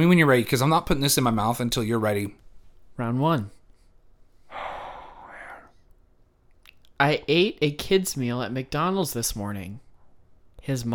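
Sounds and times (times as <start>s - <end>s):
speech: 0.0s - 2.4s, 3.0s - 3.6s, 7.0s - 9.8s, 10.6s - 10.9s
sharp breathy inhalation by a person trying not to laugh: 4.4s - 5.9s.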